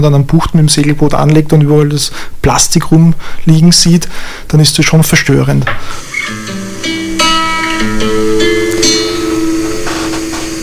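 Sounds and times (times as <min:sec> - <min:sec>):
speech: 0:00.0 - 0:06.1
steady hiss of rain: 0:05.8 - 0:10.6
classical guitar playing a slow melodic line of plucked notes: 0:06.0 - 0:10.6.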